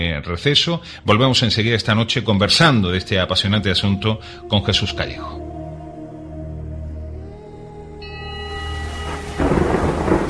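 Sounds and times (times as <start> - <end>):
speech: 0.1 - 5.4
sustained tones: 1.1 - 10.2
rain: 8.5 - 10.2
rolling thunderstorm rumble: 8.8 - 10.2
loud thunder crack: 9.0 - 10.2.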